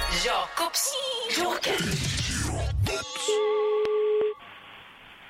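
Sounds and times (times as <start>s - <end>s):
speech: 0.2s - 2.4s, 3.0s - 3.7s
steady electronic telephone ringback tone on an outgoing call: 3.3s - 4.4s.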